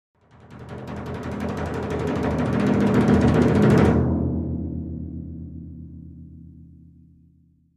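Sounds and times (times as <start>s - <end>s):
timpani roll played with hands: 0.4s - 5.7s.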